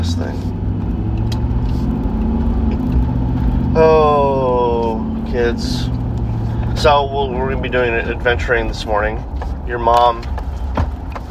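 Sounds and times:
rising whine: 0.0 - 9.1
truck engine rumbling while driving: 0.0 - 11.2
speech: 6.8 - 10.4.

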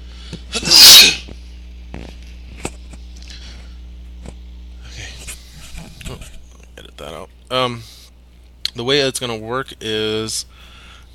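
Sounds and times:
sneeze: 0.5 - 1.3
small movement noises: 1.3 - 8.8
speech: 7.5 - 7.9, 8.8 - 10.7.

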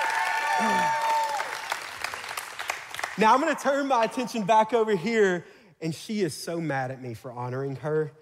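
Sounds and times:
voices cheering: 0.0 - 1.8
audience applause: 0.0 - 3.4
speech: 3.2 - 8.2.

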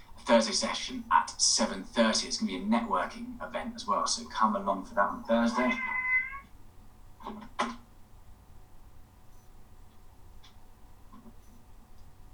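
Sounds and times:
speech: 0.3 - 6.0, 7.3 - 7.8
cat meowing: 5.4 - 6.5
soft clicks or taps: 9.3 - 12.2.

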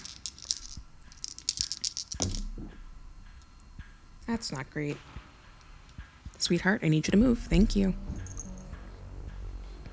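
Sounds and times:
three six-sided dice clattering on a hard tabletop: 0.0 - 2.5
speech: 4.3 - 5.1, 6.4 - 8.2.

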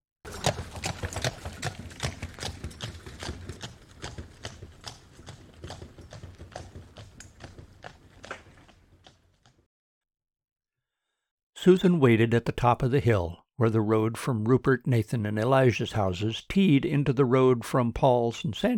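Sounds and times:
wooden wagon rolling rumble: 0.3 - 9.4
horse hooves clip-clopping on a hard road: 0.3 - 9.7
speech: 11.6 - 18.7.

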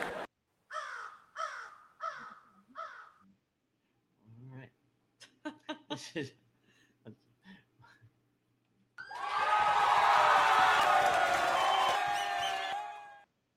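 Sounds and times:
audience cheering and whooping: 9.0 - 13.3.

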